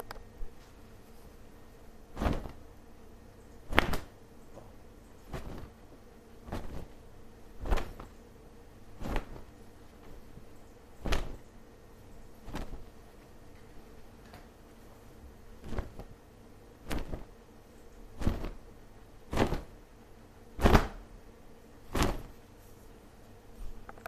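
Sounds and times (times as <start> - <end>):
cloth waving: 2.0 - 2.7, 3.7 - 4.2, 5.2 - 8.2, 8.8 - 11.4, 12.3 - 13.1, 15.5 - 16.2, 16.8 - 17.4, 18.0 - 18.7, 19.3 - 19.8, 20.6 - 21.1, 21.8 - 22.4.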